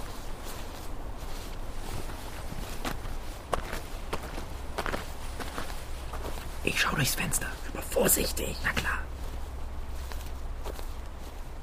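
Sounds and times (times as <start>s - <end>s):
footsteps walking behind a house: 0.0s - 11.6s
low hiss: 0.0s - 11.6s
speech: 6.7s - 9.1s.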